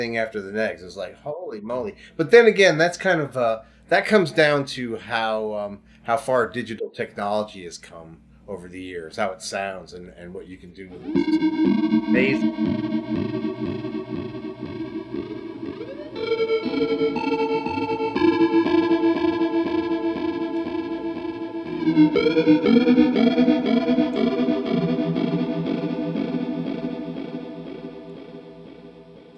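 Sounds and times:
speech: 0.0 - 13.4, 22.1 - 23.6
electric guitar through a synth pedal: 10.9 - 29.3.

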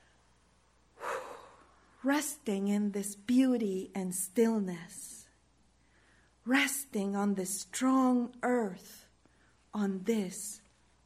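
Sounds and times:
deep breath in and out: 1.0 - 2.1, 5.8 - 6.4
speech: 2.0 - 5.1, 6.4 - 9.0, 9.7 - 10.6.

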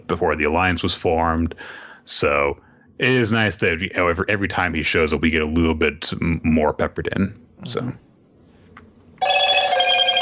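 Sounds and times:
speech: 0.1 - 8.0
phone alarm ringing: 9.2 - 10.2.

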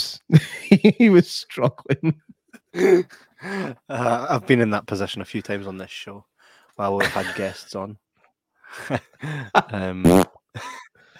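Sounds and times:
speech: 0.0 - 8.0, 8.7 - 10.8
laughter: 0.3 - 4.4, 7.0 - 7.7, 8.7 - 10.0, 10.6 - 11.0
fart noises: 10.0 - 10.4.

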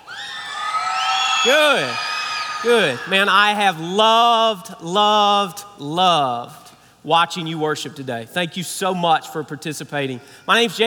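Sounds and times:
loud whoop: 0.0 - 3.4
crowd of children screaming and cheering: 0.0 - 3.5
speech: 1.4 - 10.8.

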